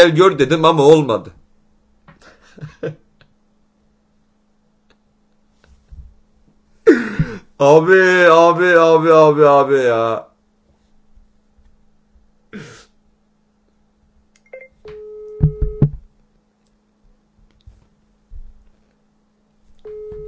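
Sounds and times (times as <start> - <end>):
speech: 0.0 - 1.4, 2.6 - 3.0, 7.6 - 10.3
person coughing or clearing throat: 6.8 - 7.5, 12.5 - 12.9
phone ringback tone on outgoing call: 14.5 - 15.9, 19.9 - 20.2.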